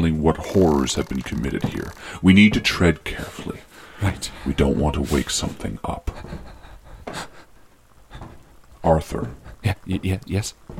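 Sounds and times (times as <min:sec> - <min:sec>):
speech: 0:00.0 - 0:07.3, 0:08.8 - 0:10.7
breathy exhale: 0:01.9 - 0:02.3, 0:03.6 - 0:04.6, 0:06.0 - 0:08.6.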